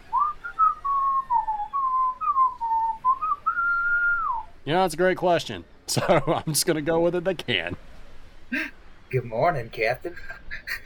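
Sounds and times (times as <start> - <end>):
person whistling a tune: 0.1 - 4.4
speech: 4.7 - 7.8, 9.1 - 10.4.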